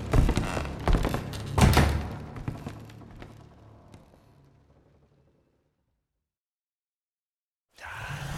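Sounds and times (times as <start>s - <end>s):
heavy doors slamming and scraping shut: 0.1s - 2.5s.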